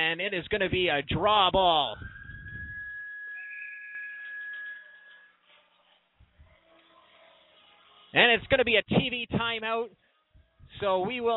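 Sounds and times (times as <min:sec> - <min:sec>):
speech: 0:00.1 - 0:02.1, 0:08.1 - 0:10.0, 0:10.7 - 0:11.3
referee's whistle stopping play in a box lacrosse game: 0:01.2 - 0:05.4.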